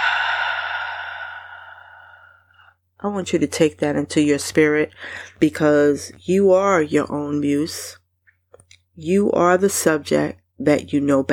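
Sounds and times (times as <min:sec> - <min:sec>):
slow inhale-and-exhale breath: 0:00.0 - 0:02.7
speech: 0:03.0 - 0:08.0, 0:09.0 - 0:11.3.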